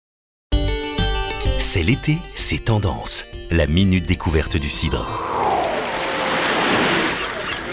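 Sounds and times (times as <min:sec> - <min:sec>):
speech: 0:01.6 - 0:05.6
gusting sea wind: 0:05.0 - 0:07.5
ocean surf: 0:05.0 - 0:07.7.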